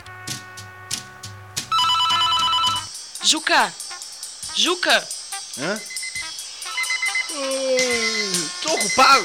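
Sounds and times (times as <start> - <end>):
low musical bed: 0.0 - 9.2
telephone ringing: 1.7 - 2.9, 5.8 - 9.2
speech: 3.3 - 3.8, 4.6 - 5.9, 7.3 - 8.0, 8.6 - 9.2.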